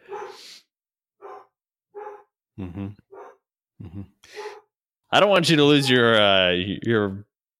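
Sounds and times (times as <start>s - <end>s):
dog barking: 0.0s - 0.5s, 1.2s - 2.3s, 3.1s - 3.4s, 4.3s - 4.7s
speech: 2.6s - 3.1s, 3.8s - 4.5s, 5.1s - 7.3s.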